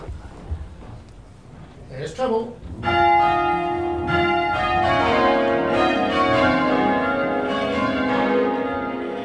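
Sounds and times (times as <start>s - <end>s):
speech: 1.9s - 3.0s
church bells ringing in peals: 2.8s - 9.2s.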